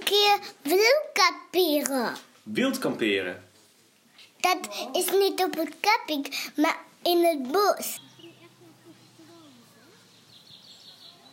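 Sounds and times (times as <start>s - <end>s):
speech: 0.1s - 3.5s, 4.4s - 8.1s
several birds chirping and warbling outdoors: 7.9s - 11.3s.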